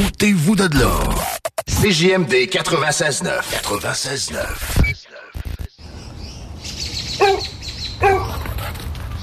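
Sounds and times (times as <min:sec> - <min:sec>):
speech: 0:00.2 - 0:05.0
birds chirping: 0:04.8 - 0:09.2
dog barking: 0:07.2 - 0:08.5.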